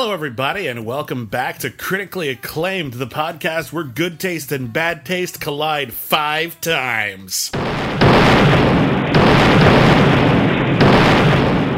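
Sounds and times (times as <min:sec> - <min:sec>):
speech: 0:00.0 - 0:08.6
loud booming explosions: 0:07.5 - 0:11.7
dense roaring rumble: 0:07.6 - 0:11.7.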